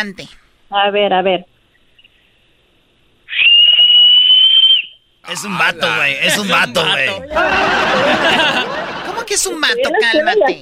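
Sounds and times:
speech: 0.0s - 1.5s, 5.3s - 10.5s
loud piercing human whistle: 3.3s - 5.0s
laughter: 5.3s - 10.5s.

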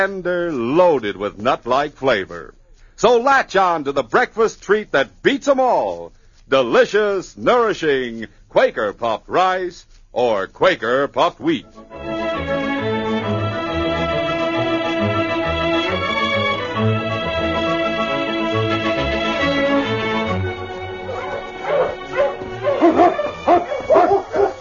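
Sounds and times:
speech: 0.0s - 12.1s
orchestral music: 11.5s - 24.5s
pack of sled dogs barking and yipping excitedly: 20.5s - 24.5s.

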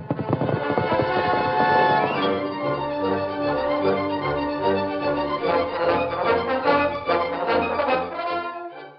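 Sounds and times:
horse galloping at top speed at twilight: 0.0s - 2.8s
loud dense orchestral music: 0.5s - 8.9s.

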